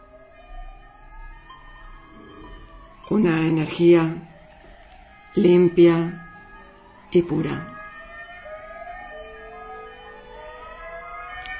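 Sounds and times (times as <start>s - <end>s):
emergency sirens wailing outside: 0.0s - 11.5s
low rumble: 2.1s - 4.4s
speech: 3.1s - 4.3s, 5.3s - 6.2s, 7.1s - 7.7s.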